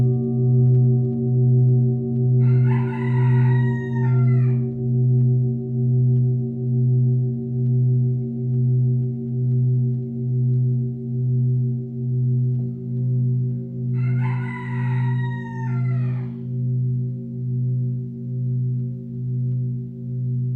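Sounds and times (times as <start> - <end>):
singing bowl humming: 0.0 - 20.5
rooster crowing: 2.4 - 4.7, 13.0 - 16.5.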